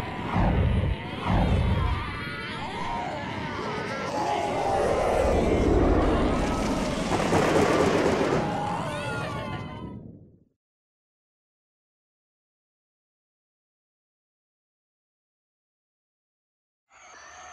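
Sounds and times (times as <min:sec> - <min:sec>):
aircraft rough takeoff: 0:00.0 - 0:09.8.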